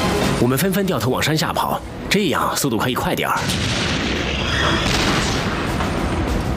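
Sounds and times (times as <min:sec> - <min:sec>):
speech: 0:00.4 - 0:04.0, 0:04.6 - 0:05.0
artillery shell explosion boom and rumbling roar: 0:03.4 - 0:06.3.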